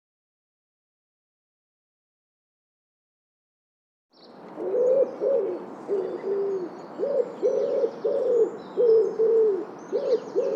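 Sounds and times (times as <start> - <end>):
bird giving low hollow cooing notes: 4.6 - 10.5.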